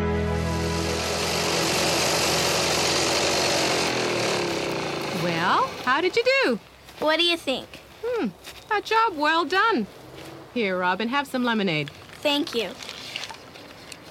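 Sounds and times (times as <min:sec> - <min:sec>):
lawnmower engine sputtering and running: 0:00.1 - 0:06.4
speech: 0:06.0 - 0:12.9.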